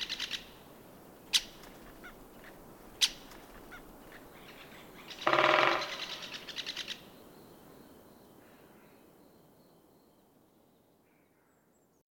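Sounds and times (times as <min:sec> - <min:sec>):
great spotted woodpecker calling: 0:00.0 - 0:00.6, 0:01.3 - 0:07.2.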